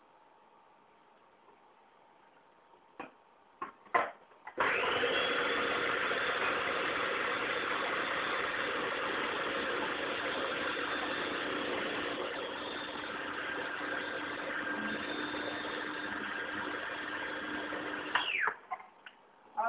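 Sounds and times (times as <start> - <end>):
blender grinding soaked soybeans with water: 4.6 - 18.4.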